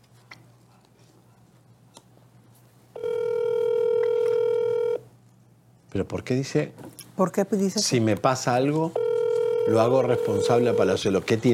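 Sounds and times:
telephone tone as a call is placed: 3.0 - 5.0, 9.0 - 11.0
speech: 6.0 - 9.0, 9.6 - 11.5.

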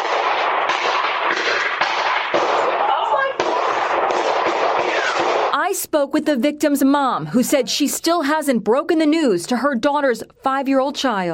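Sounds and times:
gunfire captured by a doorbell camera: 0.0 - 5.6
speech: 5.8 - 11.3.

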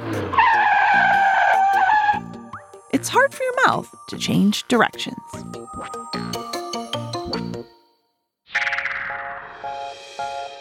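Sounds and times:
car tires skidding in a fast turn: 0.0 - 2.3
speech: 3.0 - 6.2.

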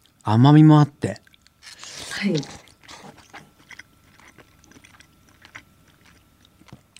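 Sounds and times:
speech: 0.2 - 1.2, 2.2 - 2.6
chewing tender fatty food eaten plain: 1.1 - 6.9
wet mouth sounds: 1.2 - 6.9.

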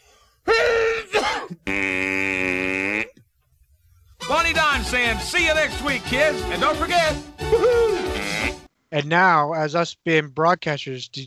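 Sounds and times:
person imitating a whale sneeze by blowing against palm pressed to cheek: 0.4 - 3.1, 7.5 - 8.7
speech: 4.9 - 8.1, 8.9 - 11.2.

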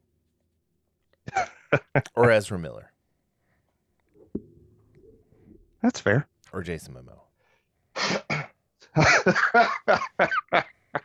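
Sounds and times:
speech: 1.3 - 2.9, 5.8 - 7.2, 9.0 - 10.6
person coughing harshly: 8.0 - 10.5.

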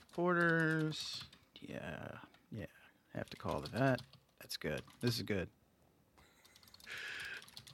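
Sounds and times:
typing on a computer keyboard: 0.0 - 1.4, 3.2 - 5.3, 6.4 - 7.7
speech: 0.2 - 5.6.

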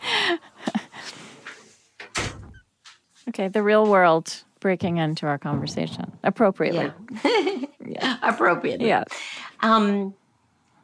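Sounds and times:
door scraping as it is pushed: 1.5 - 2.7
door closing thud: 2.0 - 2.7
speech: 3.3 - 10.2.

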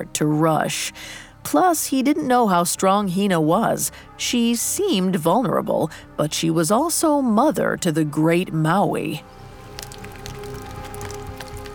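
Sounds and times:
speech: 0.0 - 9.4
raindrops plopping and tapping at a grotto: 9.4 - 11.7.

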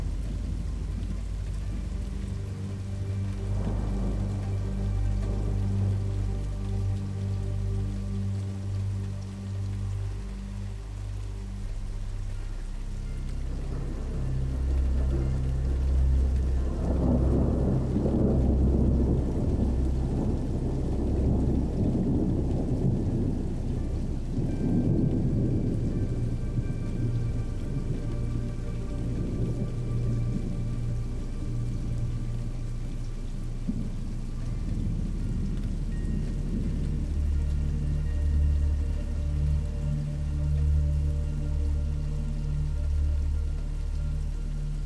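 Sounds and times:
deep thunder rolling and rumbling: 0.0 - 7.8, 13.0 - 41.0
steady rain hissing: 0.0 - 44.8.

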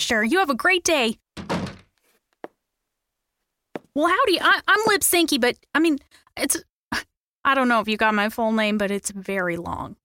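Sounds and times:
speech: 0.0 - 1.2, 4.0 - 10.0
door swinging shut with a click and thunk: 1.4 - 2.0.

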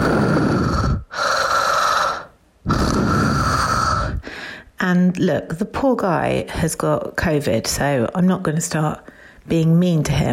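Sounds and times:
voice imitating heavy raspy mouth breathing: 0.0 - 4.4
speech: 4.8 - 10.3.

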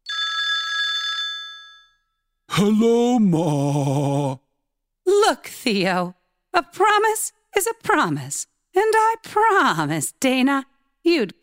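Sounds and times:
old-style telephone bell ringing: 0.0 - 2.2
speech: 2.6 - 4.4, 5.1 - 11.4.

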